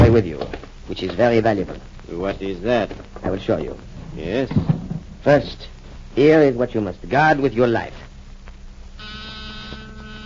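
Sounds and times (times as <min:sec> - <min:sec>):
speech: 0:00.2 - 0:08.0
small battery electric door buzzer buzzing: 0:09.0 - 0:10.2.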